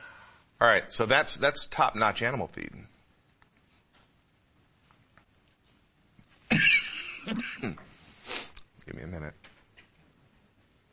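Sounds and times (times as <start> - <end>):
speech: 0.6 - 2.9
person coughing: 6.5 - 7.9
throat clearing: 6.5 - 7.9.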